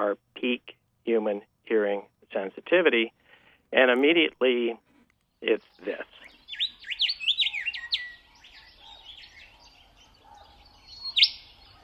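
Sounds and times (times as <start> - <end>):
speech: 0.0 - 1.9, 2.7 - 3.2, 3.8 - 4.8
willy wagtail singing for its mate in the Australian outback: 5.3 - 11.8.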